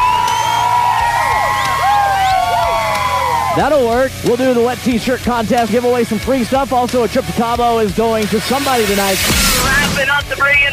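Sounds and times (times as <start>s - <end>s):
packed crowd of women screaming and cheering at a bar: 0.0s - 4.3s, 7.4s - 10.0s
speech: 3.6s - 10.7s.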